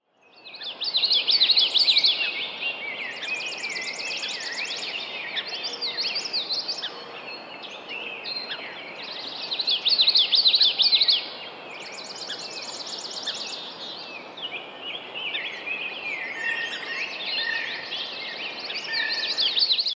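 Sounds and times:
dawn bird chorus in May: 0:00.2 - 0:19.9.

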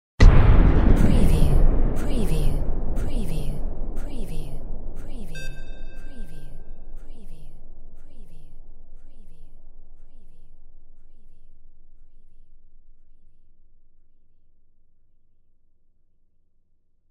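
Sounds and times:
war cannon firing: 0:00.2 - 0:04.0.

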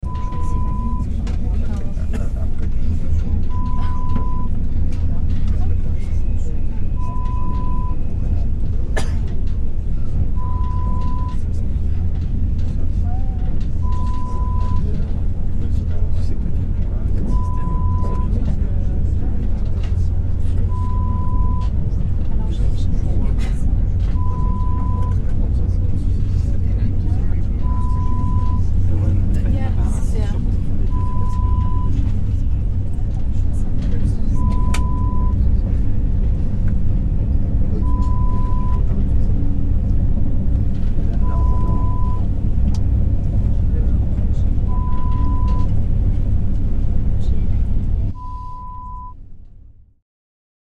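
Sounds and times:
high-speed train interior ambience: 0:00.0 - 0:49.8.

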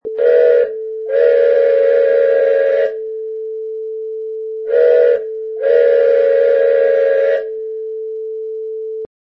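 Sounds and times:
train whistle: 0:00.0 - 0:03.2, 0:04.7 - 0:07.8.

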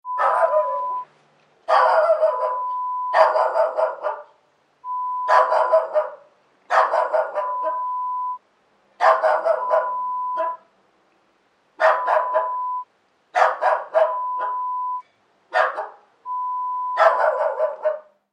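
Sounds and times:
dog barking: 0:00.1 - 0:01.0, 0:01.7 - 0:04.4, 0:05.2 - 0:08.0, 0:09.0 - 0:10.7, 0:11.8 - 0:12.8, 0:13.4 - 0:14.8, 0:15.5 - 0:16.1, 0:16.9 - 0:18.2.

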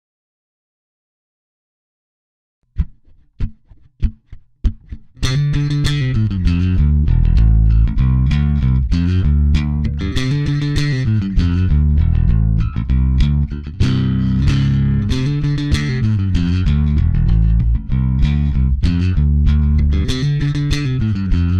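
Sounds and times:
distorted rock bass: 0:05.2 - 0:21.5.

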